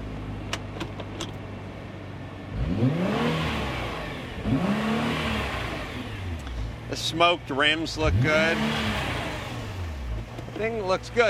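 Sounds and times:
sports car engine idling and revving against rev limiter: 0:02.4 - 0:11.2
speech: 0:06.9 - 0:09.1, 0:10.6 - 0:11.2.

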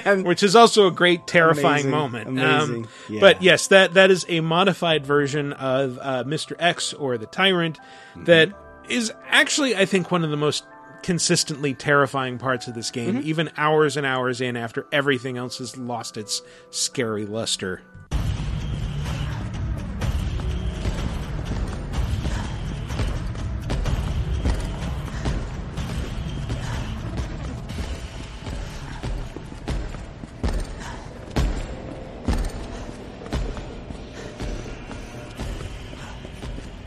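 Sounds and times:
speech: 0:00.0 - 0:18.9
creaking mechanical ambience: 0:20.2 - 0:36.8
heavy thudding footsteps of a video game monster: 0:20.2 - 0:36.8.

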